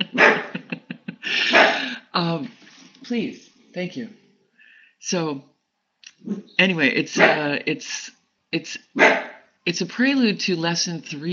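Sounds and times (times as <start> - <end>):
dog barking excitedly at passing bicycle: 0.0 - 0.6, 1.5 - 1.9, 7.2 - 7.4, 9.0 - 9.5
laughter: 0.0 - 2.1
speech: 2.2 - 4.2, 5.0 - 5.5, 6.2 - 11.3.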